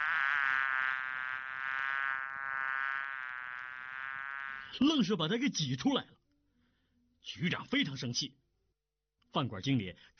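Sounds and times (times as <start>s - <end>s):
swarm of flies buzzing: 0.0s - 4.8s
speech: 4.8s - 6.2s, 7.2s - 8.4s, 9.3s - 10.1s.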